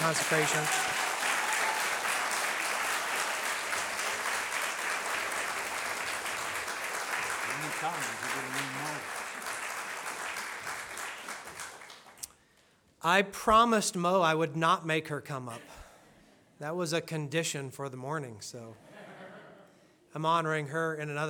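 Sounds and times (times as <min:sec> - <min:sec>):
speech: 0:00.0 - 0:01.0, 0:07.8 - 0:09.1, 0:13.0 - 0:15.8, 0:16.6 - 0:18.9, 0:20.1 - 0:21.2
crowd applauding: 0:00.0 - 0:12.3.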